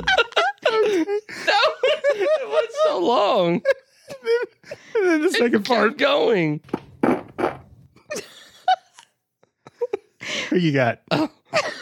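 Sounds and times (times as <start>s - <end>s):
laughter: 0.0s - 5.5s, 8.1s - 10.2s
speech: 3.0s - 3.8s, 5.4s - 6.8s, 10.5s - 11.7s
loud raspy fart bursts: 7.0s - 7.7s.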